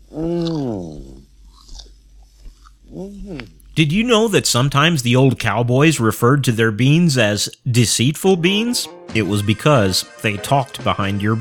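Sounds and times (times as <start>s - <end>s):
hummed vocal tone sliding downward: 0.0s - 1.3s, 2.9s - 3.6s
speech: 3.8s - 11.3s.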